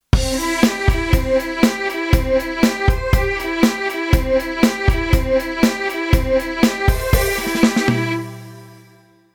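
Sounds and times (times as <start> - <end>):
MIDI strings with delay: 0.2 - 9.0.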